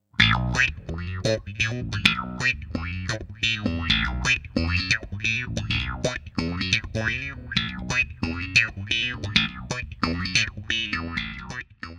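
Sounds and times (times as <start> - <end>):
wah wah slap: 0.2 - 11.6.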